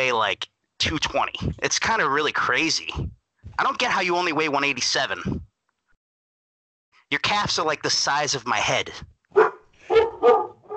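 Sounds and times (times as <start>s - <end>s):
speech: 0.0s - 5.5s, 7.1s - 9.4s
dog barking: 9.4s - 10.7s.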